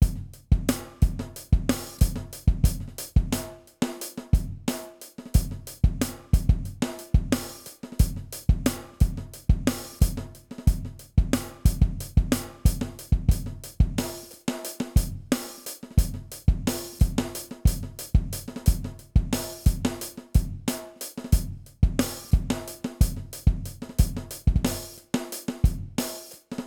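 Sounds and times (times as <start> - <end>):
drum loop: 0.0 - 3.6, 4.4 - 26.6.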